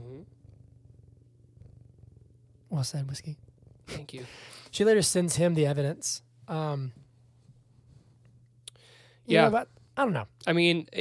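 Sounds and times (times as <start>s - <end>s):
cat purring: 0.0s - 8.5s
speech: 2.8s - 7.0s, 9.3s - 10.9s.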